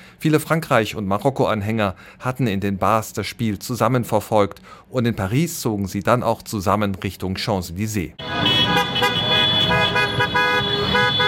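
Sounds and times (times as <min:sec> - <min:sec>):
speech: 0:00.2 - 0:08.9
traffic rumble: 0:08.0 - 0:11.2
car horns honking on a street after a football match: 0:08.2 - 0:11.2.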